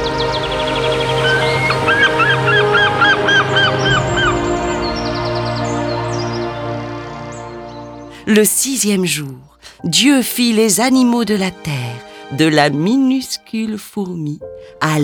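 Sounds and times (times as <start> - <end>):
constant low drone: 0.0 - 8.2
birds calling in the sky with goose-like honks: 0.0 - 8.3
speech: 8.3 - 15.0.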